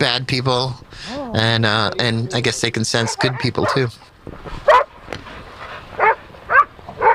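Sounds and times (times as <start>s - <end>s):
speech: 0.0s - 4.7s
faint outdoor noise: 0.0s - 7.1s
dog barking while being walked at Crissy Field in San Francisco: 2.9s - 3.9s, 4.7s - 4.9s, 6.0s - 7.1s.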